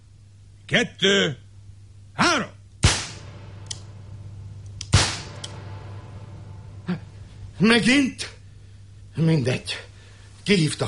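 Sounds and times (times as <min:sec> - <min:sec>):
hissy background: 0:00.0 - 0:10.8
speech: 0:00.7 - 0:01.4, 0:07.6 - 0:08.4, 0:09.2 - 0:09.9, 0:10.5 - 0:10.8
pistol shot fired in a duel: 0:02.8 - 0:06.8.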